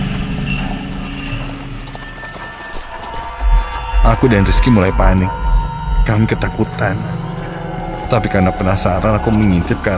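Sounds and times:
low rumbling background: 0.0 - 9.9
horse hooves clip-clopping: 0.1 - 4.2
speech: 4.1 - 5.5, 6.1 - 7.2, 8.1 - 9.9.

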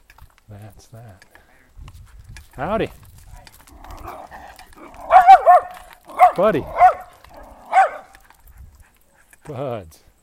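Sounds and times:
speech: 0.5 - 3.1, 6.4 - 6.9, 9.5 - 10.1
big dog barking deeply: 3.8 - 8.3.

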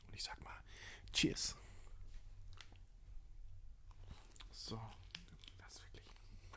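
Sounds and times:
speech: 0.2 - 1.6, 4.7 - 5.0
wet chewing of a lemon slice with coffee powder: 2.3 - 2.9, 3.8 - 6.5.

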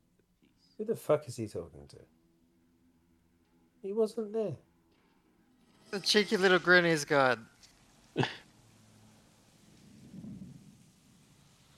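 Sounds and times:
speech: 0.8 - 2.2, 3.8 - 4.7, 5.9 - 7.5, 8.2 - 8.4
heavy rain: 6.0 - 11.7
low rolling thunder rumble: 8.0 - 11.7
sharp thunderclap: 9.5 - 11.7.

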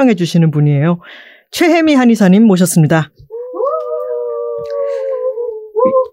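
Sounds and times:
speech: 0.0 - 3.2, 4.6 - 5.0
staff members cheering and whooping: 3.3 - 6.1.

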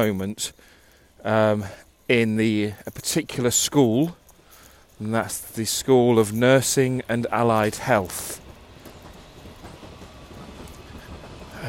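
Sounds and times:
speech: 0.0 - 4.2, 5.0 - 8.4
train passing by on railway: 0.0 - 11.6
faint rhythmic clatter from train wheels: 1.5 - 11.6.

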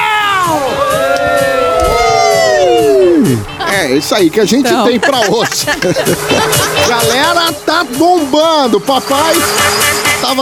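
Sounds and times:
live studio audience cheering: 0.0 - 3.4
overlapping whoops and yells: 0.0 - 3.4
laughter: 2.2 - 7.5
speech: 3.9 - 10.4.

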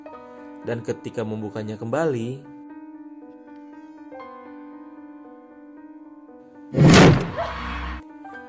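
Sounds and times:
speech: 0.7 - 2.5
door slamming shut: 6.8 - 7.8.

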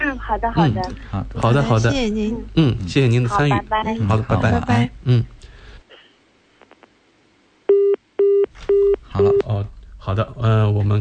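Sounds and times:
speech: 0.2 - 5.4, 9.2 - 11.0
loud steady electronic beeps from a phone line after call disconnects: 7.7 - 9.5.

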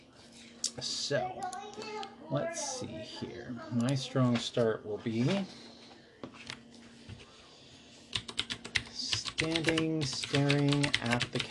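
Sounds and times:
faint steady hum: 0.0 - 11.4
speech: 0.8 - 5.7, 9.4 - 11.4
mechanical computer keyboard typing: 8.1 - 11.4.

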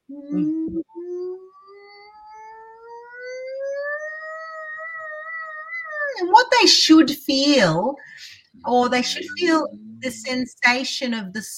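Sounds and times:
person humming a vocal siren exercise with mouth closed: 0.1 - 5.3
speech: 0.2 - 0.8, 6.3 - 8.0, 8.6 - 11.5.

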